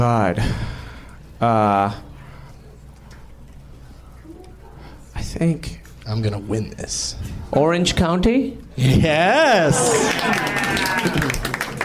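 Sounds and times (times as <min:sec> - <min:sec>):
speech: 0:00.0 - 0:00.8, 0:01.4 - 0:02.1, 0:05.3 - 0:11.4
faint cheering: 0:09.0 - 0:11.8
applause from a small group: 0:09.7 - 0:11.8.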